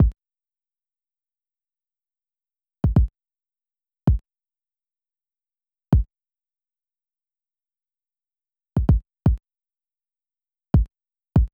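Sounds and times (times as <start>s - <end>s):
kick drum in D at 162 BPM: 2.8s - 3.1s, 8.8s - 9.4s, 10.8s - 11.5s.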